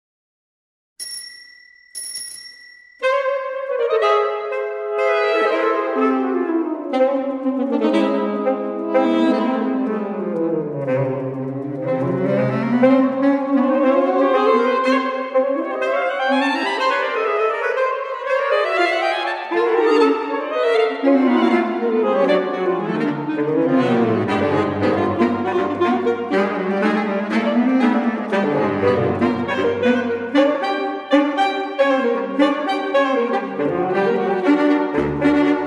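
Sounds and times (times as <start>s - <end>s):
bicycle bell: 1.0s - 3.4s
saxophone quartet: 3.5s - 35.6s.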